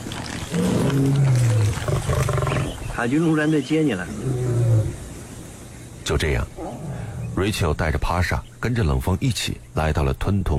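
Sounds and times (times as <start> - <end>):
lion roaring: 0.4 - 2.8, 4.1 - 5.0, 6.6 - 7.5
speech: 0.6 - 1.3, 3.0 - 4.4, 6.1 - 6.8, 7.4 - 10.5.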